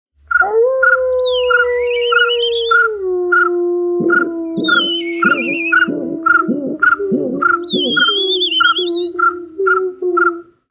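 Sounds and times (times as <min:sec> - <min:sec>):
concert of animal calls: 0:00.3 - 0:10.6.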